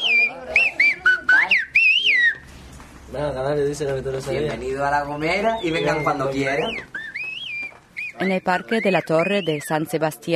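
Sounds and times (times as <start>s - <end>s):
Silbo Gomero whistled language message of La Gomera: 0.0s - 2.5s, 5.1s - 10.2s
speech: 3.2s - 7.0s, 8.2s - 10.3s.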